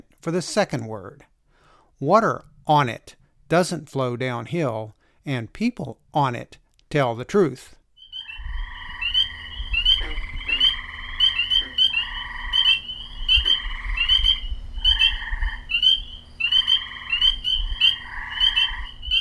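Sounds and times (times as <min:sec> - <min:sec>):
speech: 0:00.2 - 0:01.3, 0:02.0 - 0:07.8
frogs croaking in a flat seasonally wet area in Tazewell County Virginia in spring: 0:08.0 - 0:19.2
steady low hum: 0:08.1 - 0:19.2.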